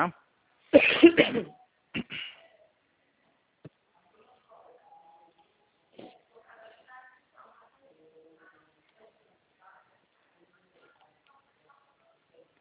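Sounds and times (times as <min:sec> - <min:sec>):
speech: 0:00.0 - 0:02.3
person coughing: 0:00.8 - 0:02.4.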